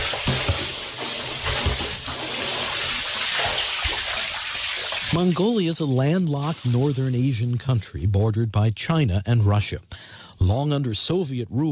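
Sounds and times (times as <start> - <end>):
water sloshing and splashing as a man draws it from a deep well: 0.0 - 5.2
speech: 5.2 - 11.7.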